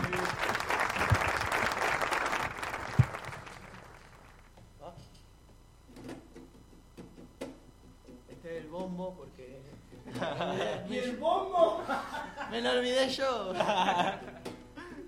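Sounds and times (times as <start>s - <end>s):
audience applause for a group playing live: 0.0s - 4.5s
laughter: 10.0s - 15.0s
speech: 12.6s - 14.2s.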